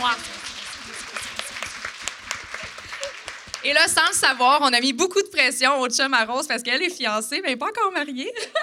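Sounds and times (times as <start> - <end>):
crowd applauding: 0.0 - 4.6
speech: 3.6 - 8.6.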